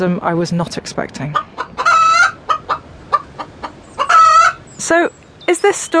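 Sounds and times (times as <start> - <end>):
speech: 0.0 - 1.6, 4.8 - 5.9
chicken clucking and squawking at a poultry farm near Bristol: 1.3 - 4.8.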